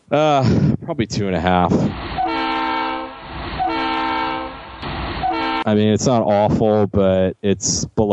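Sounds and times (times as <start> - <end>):
speech: 0.1 - 2.1, 5.6 - 8.1
train horn sound effect blasts: 2.1 - 5.7.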